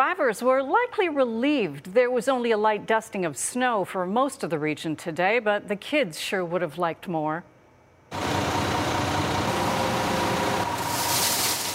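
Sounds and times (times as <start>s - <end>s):
speech: 0.1s - 7.5s, 8.1s - 8.4s
heavy road maintenance truck engine rumbling: 8.1s - 11.6s
salt pouring into road maintenance trucks in Metro Vancouver: 10.7s - 11.7s.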